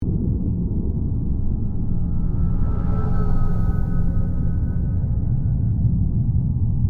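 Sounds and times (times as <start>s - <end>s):
space ambience: 0.0s - 6.8s
spacecraft passing by: 0.4s - 6.1s.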